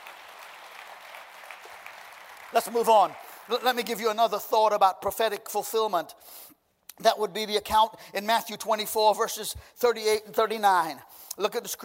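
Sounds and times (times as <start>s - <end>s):
audience clapping: 0.0s - 4.4s
speech: 2.5s - 11.8s.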